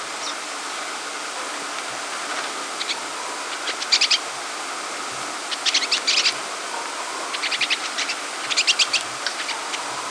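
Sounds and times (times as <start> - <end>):
background hiss: 0.0 - 10.0
pine siskin twittering calls: 0.1 - 0.5, 2.7 - 4.4, 5.4 - 10.0.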